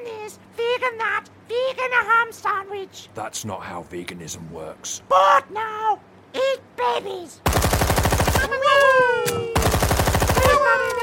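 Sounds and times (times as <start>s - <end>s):
speech: 0.3s - 7.8s, 8.4s - 9.7s, 10.6s - 11.0s
Gatling machine gun firing in bursts: 7.4s - 8.6s, 9.6s - 10.9s.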